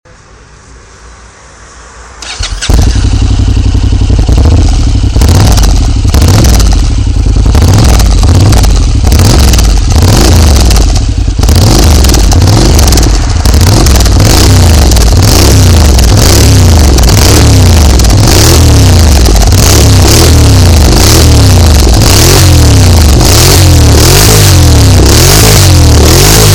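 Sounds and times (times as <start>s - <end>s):
Honda NC700 motorcycle engine: 0.1s - 26.5s.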